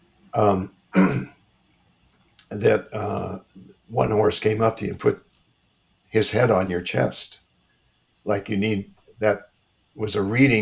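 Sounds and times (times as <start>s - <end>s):
speech: 0.4s - 1.3s, 2.5s - 5.3s, 6.1s - 7.4s, 8.2s - 10.6s
person with a froggy throat clearing throat: 1.0s - 1.4s.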